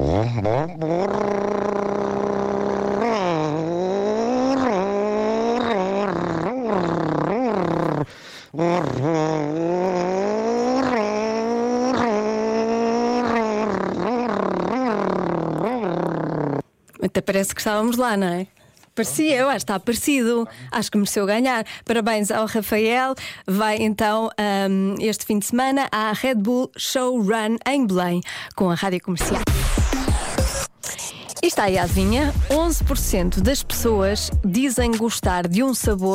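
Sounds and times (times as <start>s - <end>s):
man's voice imitating a rally car engine: 0.0s - 16.6s
speech: 17.2s - 30.0s, 31.6s - 36.1s.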